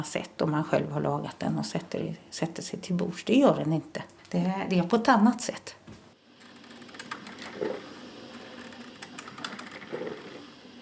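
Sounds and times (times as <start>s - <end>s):
speech: 0.0s - 5.8s
coffee maker percolating coffee: 6.2s - 10.8s
coffee maker gurgling bursts: 7.3s - 10.8s.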